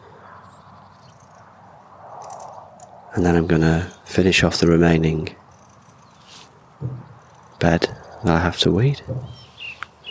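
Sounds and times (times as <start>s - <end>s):
faint bird chirps and short song phrases: 0.0s - 10.0s
steady hissy outdoor background: 0.0s - 10.0s
speech: 3.1s - 5.4s, 7.6s - 9.4s.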